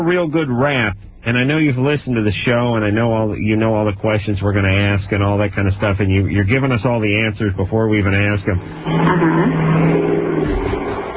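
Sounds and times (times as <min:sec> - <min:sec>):
speech: 0:00.0 - 0:11.1
truck engine roaring as it drives past: 0:08.5 - 0:11.1.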